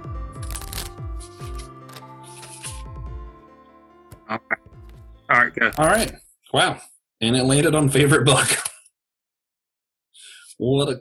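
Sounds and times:
deck of cards being shuffled: 0:00.3 - 0:02.9
speech: 0:04.3 - 0:04.6, 0:05.5 - 0:08.7, 0:10.6 - 0:10.9.

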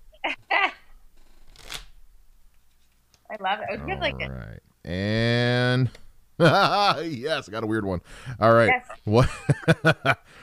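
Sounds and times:
deck of question cards being shuffled: 0:01.4 - 0:02.0
speech: 0:03.4 - 0:10.4
laughter: 0:06.4 - 0:07.2, 0:09.1 - 0:10.3.

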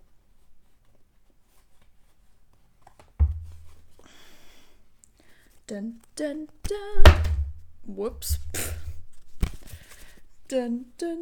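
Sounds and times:
speech: 0:05.7 - 0:08.8, 0:10.5 - 0:11.2
deck of paper cards being shuffled: 0:08.3 - 0:10.2.

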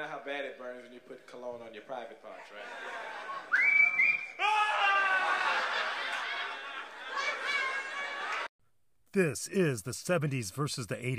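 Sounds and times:
speech: 0:00.0 - 0:04.6, 0:09.2 - 0:11.1
laughter: 0:02.4 - 0:03.7, 0:04.6 - 0:08.5
whistled tune from a commercial: 0:03.5 - 0:04.4.

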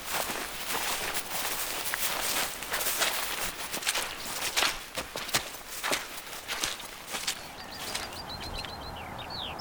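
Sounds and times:
crunching footsteps on a dawn walk leaving woodland: 0:00.0 - 0:08.7
faint high bird calls: 0:07.2 - 0:09.5.

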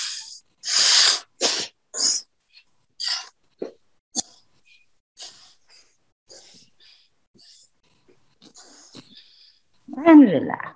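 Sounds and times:
alternate nostril breathing with eyes closed: 0:00.0 - 0:03.4, 0:04.2 - 0:09.7
speech: 0:10.1 - 0:10.7.

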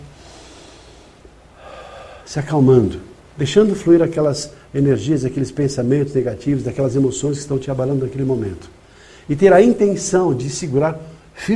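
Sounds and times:
deep breath in during a breathing exercise: 0:00.0 - 0:02.3, 0:08.8 - 0:09.3
speech: 0:02.3 - 0:11.5.

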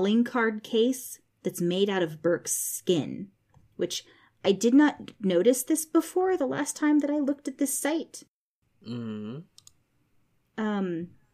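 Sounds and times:
speech: 0:00.0 - 0:09.5, 0:10.6 - 0:11.2
short voiced hums from a person: 0:08.9 - 0:09.4
quiet computer mouse double click on a website: 0:09.6 - 0:09.8.

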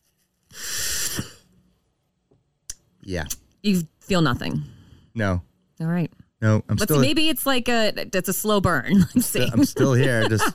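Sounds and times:
breathy inhale of peppermint-flavoured air from an inhaler: 0:00.5 - 0:01.4
speech: 0:03.1 - 0:10.5
laughter: 0:08.9 - 0:10.5.

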